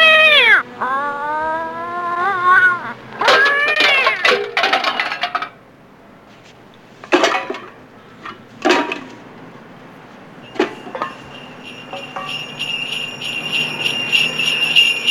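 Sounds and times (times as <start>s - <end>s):
alley cat meowing and wailing: 0.0s - 4.4s
metallic dish-like clattering onto the ground: 3.2s - 5.7s, 6.3s - 15.0s.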